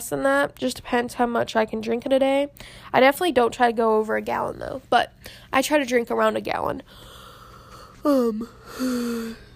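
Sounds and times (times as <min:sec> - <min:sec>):
speech: 0:00.0 - 0:07.1, 0:08.0 - 0:09.4
voiced yawn: 0:07.1 - 0:09.5.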